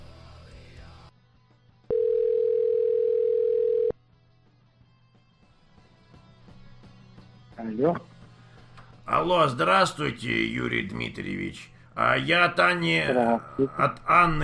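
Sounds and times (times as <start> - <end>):
telephone ringback tone while a call is being placed: 1.9 - 3.9
speech: 7.8 - 8.1, 9.2 - 14.4.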